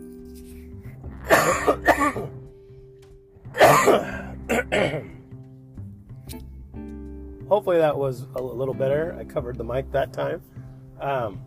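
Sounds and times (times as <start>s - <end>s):
harsh rasping coughing fit: 1.0s - 2.5s, 3.5s - 5.3s
speech: 7.6s - 11.4s.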